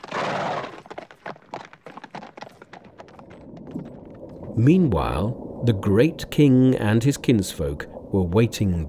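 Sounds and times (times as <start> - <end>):
horse hooves galloping: 0.0 - 5.8
speech: 4.6 - 8.8.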